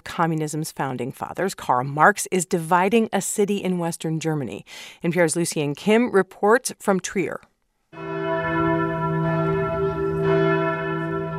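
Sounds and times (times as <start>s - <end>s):
speech: 0.2s - 8.1s
church bells ringing in Trier in western Germany: 8.0s - 11.3s.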